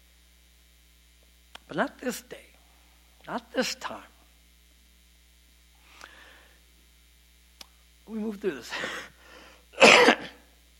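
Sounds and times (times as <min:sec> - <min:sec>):
speech: 0:01.7 - 0:02.5, 0:03.2 - 0:04.1, 0:08.1 - 0:09.1
cough: 0:09.8 - 0:10.5.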